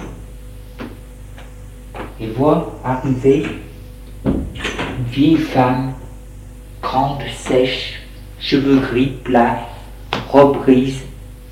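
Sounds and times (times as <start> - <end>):
steady low hum: 0.0 - 11.5
speech: 2.2 - 3.7, 5.1 - 6.0, 6.9 - 9.7, 10.3 - 11.1
door opening in a quiet salon with wooden clunk and scrape: 4.2 - 5.1.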